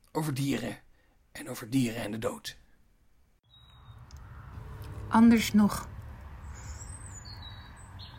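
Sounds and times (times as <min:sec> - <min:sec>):
speech: 0:00.2 - 0:00.8, 0:01.4 - 0:02.6, 0:05.1 - 0:05.9
birds chirping in a garden: 0:03.4 - 0:08.1
steady low rumble of noise: 0:03.7 - 0:07.8.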